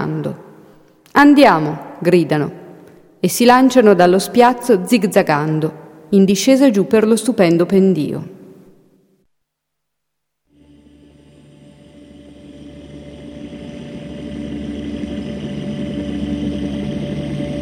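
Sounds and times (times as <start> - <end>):
speech: 0.1 - 0.5, 1.2 - 2.6, 3.2 - 8.4
vehicle engine droning down a snowy slope: 10.6 - 17.6.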